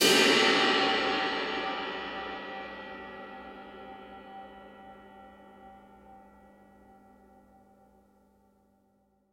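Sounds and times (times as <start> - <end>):
multiple low crash cymbals on a drum kit: 0.0 - 7.0.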